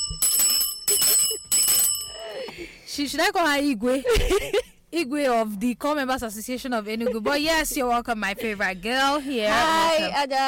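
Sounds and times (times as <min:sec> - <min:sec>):
hand bell rung in a studio: 0:00.0 - 0:02.4
speech: 0:03.0 - 0:10.4.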